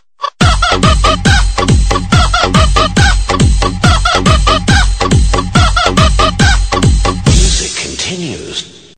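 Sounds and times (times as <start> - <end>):
dance ringtone music: 0.4 - 7.6.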